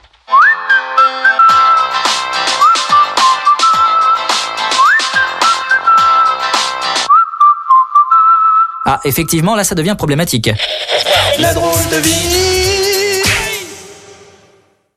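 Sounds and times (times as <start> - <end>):
loud shrill whistling: 0.3 - 9.4
speech: 9.0 - 12.7.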